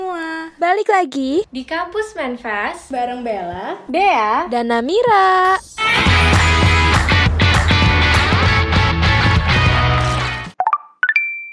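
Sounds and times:
speech: 0:00.6 - 0:06.4
dense musical bed: 0:05.6 - 0:10.6.

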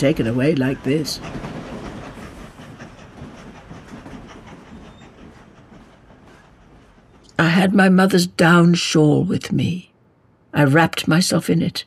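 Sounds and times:
speech: 0:00.0 - 0:01.5, 0:07.6 - 0:09.9, 0:10.6 - 0:11.8
passenger train wheels clacking on rails: 0:00.0 - 0:08.0
passenger train bound for Moscow rumbling along the rails: 0:00.0 - 0:09.8.

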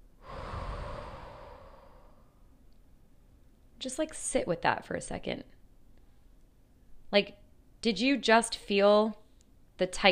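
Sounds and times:
deep slow breath taken as a relaxation exercise: 0:00.0 - 0:02.5
speech: 0:03.8 - 0:05.6, 0:07.1 - 0:09.2, 0:09.8 - 0:10.0.

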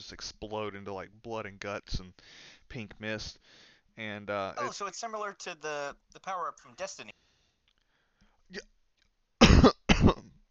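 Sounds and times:
speech: 0:00.1 - 0:07.2, 0:08.5 - 0:08.7, 0:09.6 - 0:10.3
harsh coughing from someone with something stuck in the throat: 0:09.4 - 0:10.4
throat clearing from someone with something stuck in the throat: 0:09.4 - 0:10.4.

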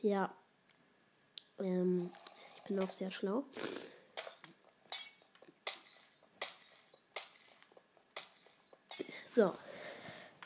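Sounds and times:
speech: 0:00.0 - 0:00.4, 0:01.6 - 0:03.9, 0:09.4 - 0:09.7
video game glass-breaking crashes from removing glass on a potato farm: 0:04.2 - 0:09.1.

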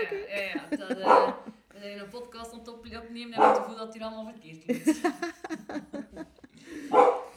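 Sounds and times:
laughter: 0:00.0 - 0:01.8, 0:04.7 - 0:07.3
speech: 0:00.1 - 0:01.4, 0:02.1 - 0:05.7
dog barking with short sharp yappy barks: 0:01.0 - 0:01.6, 0:03.4 - 0:03.8, 0:06.9 - 0:07.3.

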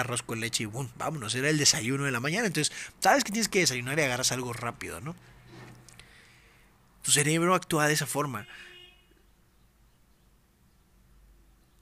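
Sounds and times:
speech: 0:00.0 - 0:05.4, 0:07.0 - 0:08.7
short bright car horn beep: 0:08.3 - 0:09.2.

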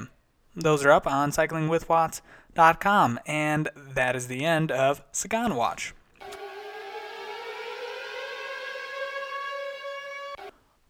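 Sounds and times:
speech: 0:00.6 - 0:06.0
siren wailing at a constant pitch: 0:06.2 - 0:10.6.

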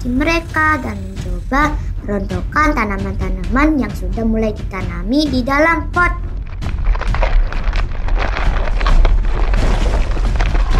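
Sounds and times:
speech: 0:00.0 - 0:06.3
earthquake rumble with deep booming roar: 0:06.1 - 0:10.7
crackling crashing bursts: 0:06.3 - 0:10.7.

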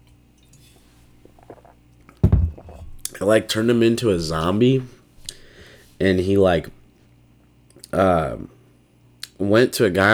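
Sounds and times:
soft wet slurps sipping wine: 0:00.5 - 0:01.8, 0:02.5 - 0:03.2
heavy gulp of wine: 0:01.2 - 0:03.2
speech: 0:03.2 - 0:05.0, 0:06.0 - 0:06.8, 0:07.9 - 0:08.5, 0:09.4 - 0:10.1.

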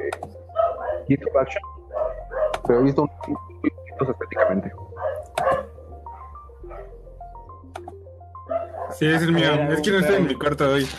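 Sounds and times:
dog barking: 0:00.5 - 0:01.3, 0:01.9 - 0:02.7, 0:04.3 - 0:07.0, 0:08.5 - 0:09.0
speech: 0:01.1 - 0:01.7, 0:02.7 - 0:04.9, 0:08.9 - 0:10.9.

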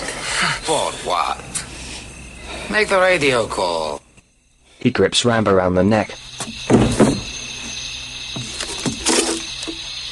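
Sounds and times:
speech: 0:00.7 - 0:01.6, 0:02.7 - 0:04.0, 0:04.8 - 0:06.8
door of a military barracks hut shut by a woman: 0:06.4 - 0:07.4.

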